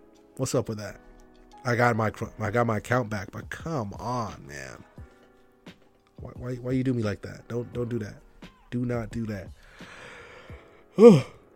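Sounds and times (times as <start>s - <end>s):
speech: 0.4s - 4.9s, 6.2s - 11.4s
faint breath: 9.6s - 11.0s
person yawning: 10.9s - 11.4s.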